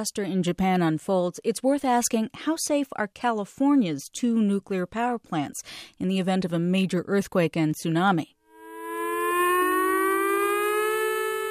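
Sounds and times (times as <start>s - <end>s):
speech: 0.0s - 8.4s
civil defense-style nuclear plant emergency siren in California wailing during test: 8.5s - 11.5s.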